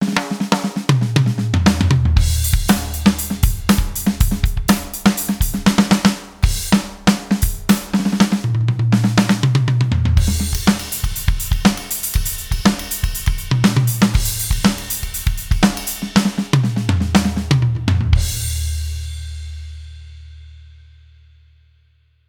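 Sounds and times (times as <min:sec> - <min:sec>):
Alesis Strata Club drum kit: 0:00.0 - 0:20.9.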